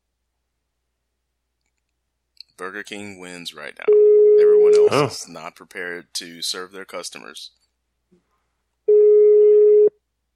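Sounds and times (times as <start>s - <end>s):
speech: 2.6s - 4.0s, 4.6s - 7.6s
electronic telephone ring tone through a phone line: 3.9s - 4.9s, 8.9s - 9.9s.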